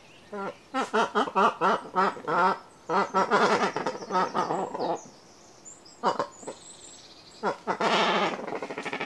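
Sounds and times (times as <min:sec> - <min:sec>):
cormorant harsh guttural croaks: 0:00.3 - 0:05.1, 0:06.0 - 0:06.6, 0:07.4 - 0:09.0.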